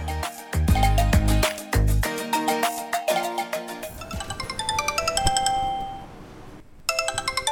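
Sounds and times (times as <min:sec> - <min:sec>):
telephone melodic electronic ringtone: 0:00.7 - 0:01.6, 0:02.3 - 0:06.1, 0:06.9 - 0:07.5.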